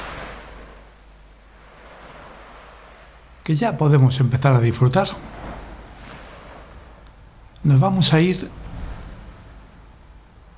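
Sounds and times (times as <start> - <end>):
sea waves rushing: 0.0 - 10.5
speech: 3.4 - 5.4, 7.6 - 8.6.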